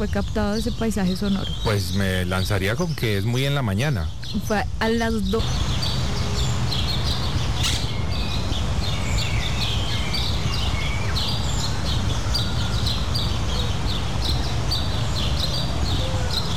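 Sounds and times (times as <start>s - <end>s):
speech: 0.0s - 5.8s
chorus of many birds chirping, tweeting and squawking in a city park: 0.0s - 16.5s
steady low rumble of city noise: 0.0s - 16.5s.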